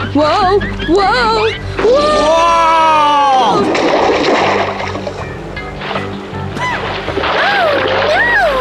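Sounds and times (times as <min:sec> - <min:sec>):
speech: 0:00.1 - 0:04.0
rushing, bubbling river water: 0:01.6 - 0:08.5
people tumbling into a river with a churning splash: 0:01.8 - 0:08.5.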